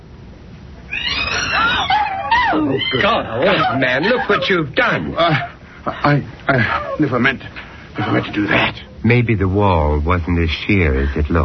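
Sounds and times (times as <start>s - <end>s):
startled cat yowling: 0.8s - 4.5s
speech: 2.6s - 11.4s.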